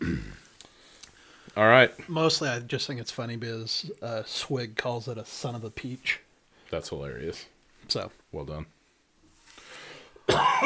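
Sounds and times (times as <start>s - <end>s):
person coughing into a microphone: 0.0s - 0.4s, 10.3s - 10.6s
quiet room noise: 0.0s - 10.6s
speech: 1.6s - 8.8s.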